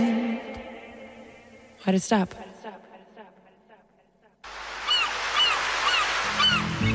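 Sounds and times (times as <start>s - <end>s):
speech: 1.8s - 2.5s
loud sea surf rushing: 4.5s - 6.9s
seagulls crying over the sea: 4.8s - 6.9s.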